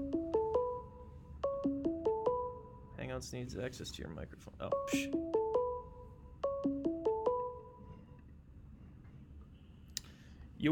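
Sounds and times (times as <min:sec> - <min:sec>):
ringtone of an incoming phone call with plucked electronic notes: 0:00.0 - 0:02.8, 0:04.8 - 0:08.0
speech: 0:03.2 - 0:05.4.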